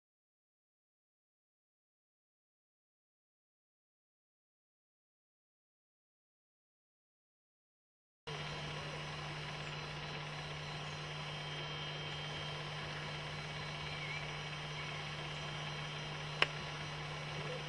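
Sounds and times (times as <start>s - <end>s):
juvenile bird flight call: 8.3s - 17.6s.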